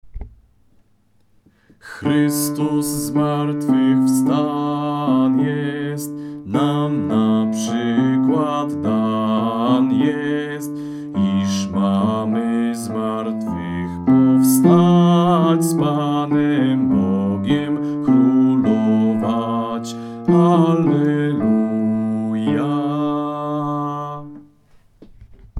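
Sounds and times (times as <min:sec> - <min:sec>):
bass voice singing a Passion hymn: 0:01.8 - 0:24.5.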